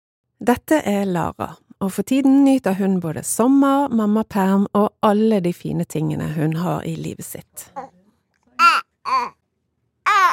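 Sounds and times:
speech: 0.4 - 8.0
three-month-old baby boy babbling and cooing: 7.8 - 8.0, 8.6 - 9.4, 10.1 - 10.3.

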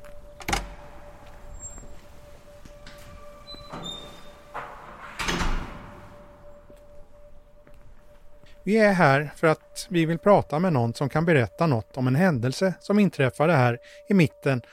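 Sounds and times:
steady low hum: 0.0 - 12.5
apartment building entrance door clicking and swinging open: 0.3 - 6.8
speech: 8.7 - 14.7.

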